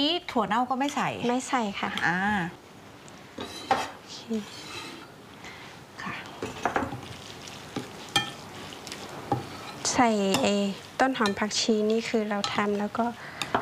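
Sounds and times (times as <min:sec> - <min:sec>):
speech: 0:00.0 - 0:02.6, 0:04.3 - 0:04.7, 0:10.0 - 0:13.3
utensil scraping and clinking while stirring ingredients in a bowl: 0:03.4 - 0:05.1, 0:06.4 - 0:13.6.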